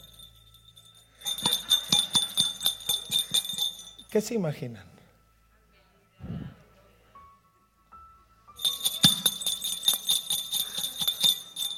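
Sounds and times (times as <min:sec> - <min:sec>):
small jingle bells on a sweater jingling: 0:00.0 - 0:04.4, 0:08.6 - 0:11.7
speech: 0:04.1 - 0:04.9.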